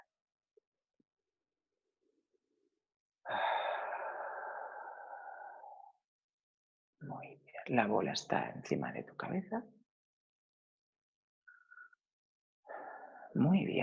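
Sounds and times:
long deep breath: 3.3 - 6.0, 12.7 - 13.3
speech: 7.0 - 9.8, 13.4 - 13.8.

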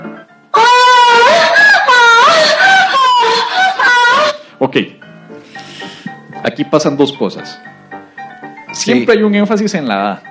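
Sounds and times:
woman screaming: 0.6 - 4.5
speech: 4.6 - 4.9, 6.4 - 7.7, 8.8 - 10.2.

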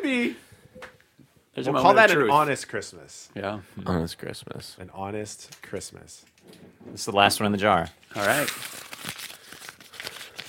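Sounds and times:
speech: 1.6 - 8.8
gift wrapping paper crinkling and rustling: 8.0 - 10.4.

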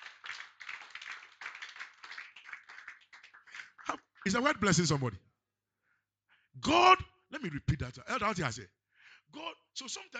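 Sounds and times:
audience clapping: 0.0 - 3.9
speech: 3.9 - 5.3, 6.6 - 10.1.

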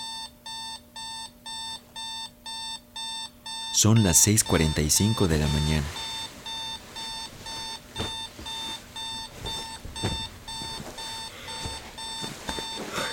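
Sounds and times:
alarm clock ringing in electronic beep bursts: 0.0 - 13.1
speech: 3.8 - 6.0
soft thuds: 7.4 - 13.1.

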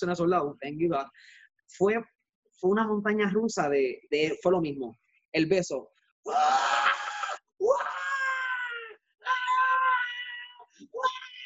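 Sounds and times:
speech: 0.0 - 6.9
one voice imitating a theater audience screaming: 6.3 - 11.4.

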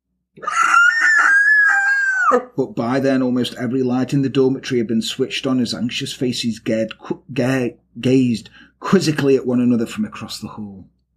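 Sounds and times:
person screaming in terror: 0.4 - 2.5
speech: 2.3 - 11.0.

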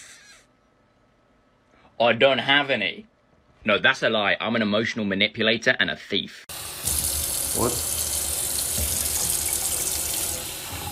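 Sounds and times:
speech: 2.0 - 7.0, 7.6 - 7.9
water running from a tap into a sink: 6.8 - 10.9.

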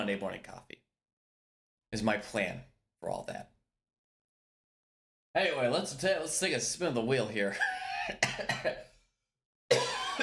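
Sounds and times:
speech: 0.0 - 0.8, 1.9 - 3.5, 5.3 - 8.9
person coughing harshly: 7.6 - 8.9, 9.7 - 10.2.

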